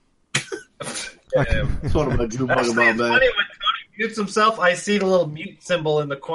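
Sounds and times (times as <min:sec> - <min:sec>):
person coughing: 0:00.4 - 0:01.1
laughter: 0:00.4 - 0:03.8
speech: 0:00.8 - 0:06.3.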